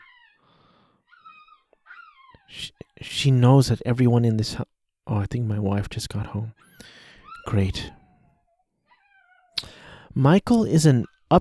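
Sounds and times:
female dog whimpering in high drawn-out whines: 0:00.0 - 0:02.6, 0:06.6 - 0:09.6
speech: 0:02.5 - 0:08.0, 0:10.2 - 0:11.4.

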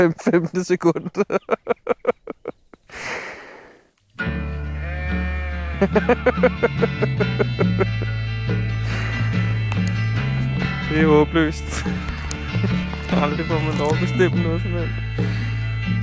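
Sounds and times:
speech: 0:00.0 - 0:02.1, 0:05.8 - 0:08.1, 0:10.9 - 0:15.5
laughter: 0:00.0 - 0:02.9, 0:05.7 - 0:08.2, 0:11.6 - 0:13.2
breathy noises: 0:02.8 - 0:04.0, 0:08.7 - 0:10.9, 0:11.6 - 0:14.0, 0:15.0 - 0:15.9
sheep bleating: 0:04.4 - 0:06.4.

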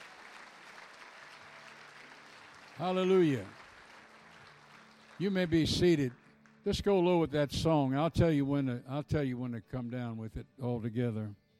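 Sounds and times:
audience clapping as an offering to God: 0:00.0 - 0:07.1
speech: 0:02.8 - 0:03.6, 0:05.2 - 0:11.4.

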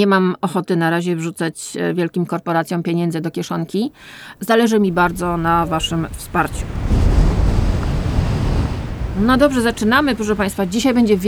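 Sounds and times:
speech: 0:00.0 - 0:06.9, 0:09.2 - 0:11.2
howling wind: 0:04.7 - 0:11.2.

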